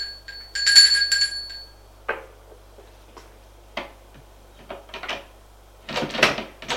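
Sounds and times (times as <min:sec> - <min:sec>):
doorbell ringing: 0:00.0 - 0:01.8
rustling and shuffling: 0:00.0 - 0:06.7.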